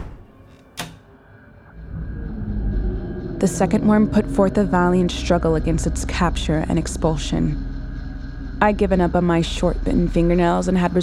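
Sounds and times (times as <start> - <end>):
door shutting: 0.0 - 1.1
low rumble: 1.3 - 11.0
speech: 3.4 - 7.7, 8.6 - 11.0.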